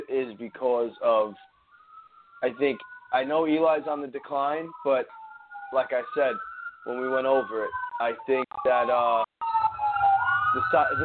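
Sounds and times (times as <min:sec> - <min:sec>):
emergency siren wailing on a main road: 0:00.0 - 0:11.0
speech: 0:00.2 - 0:01.5, 0:02.4 - 0:09.4, 0:10.5 - 0:11.0.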